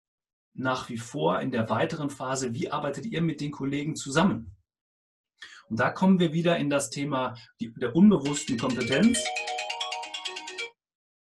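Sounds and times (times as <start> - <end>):
speech: 0.6 - 4.6, 5.4 - 9.6
mobile phone ringtone chiming in bright tonal pulses: 8.2 - 10.8.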